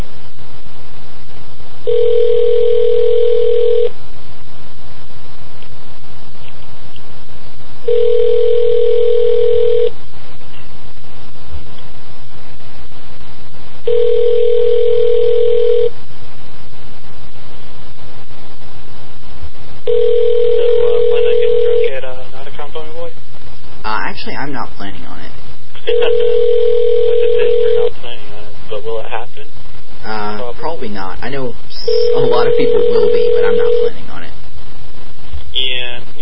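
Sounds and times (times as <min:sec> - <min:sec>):
faint steady low hum: 0:00.0 - 0:36.1
telephone tone while dialing a phone: 0:01.9 - 0:03.9, 0:07.9 - 0:09.9, 0:13.9 - 0:15.9, 0:19.9 - 0:21.9, 0:25.9 - 0:27.9, 0:31.8 - 0:33.9.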